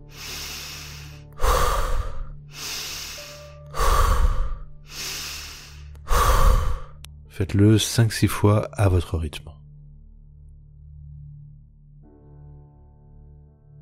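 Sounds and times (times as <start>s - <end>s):
long airy inhales and forceful exhales: 0.0s - 7.1s
speech: 7.4s - 9.6s.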